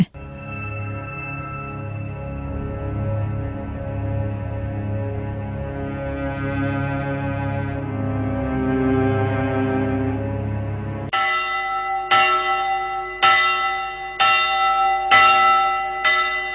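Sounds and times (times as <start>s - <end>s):
low droning sustained tone: 0.1s - 11.1s
monastery church bells ringing: 0.2s - 5.3s, 11.1s - 16.5s.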